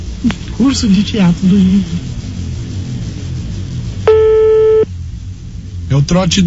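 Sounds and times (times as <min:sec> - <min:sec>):
low rumbling background: 0:00.0 - 0:06.4
speech: 0:00.2 - 0:02.2, 0:06.0 - 0:06.4
telephone busy signal after dialing a call: 0:04.1 - 0:04.9.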